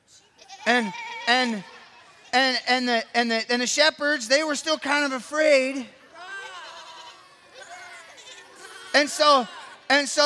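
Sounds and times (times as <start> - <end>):
faint noise: 0.0 - 10.2
speech: 0.7 - 1.7, 2.3 - 6.0, 9.0 - 10.2
sheep bleating: 6.5 - 9.5.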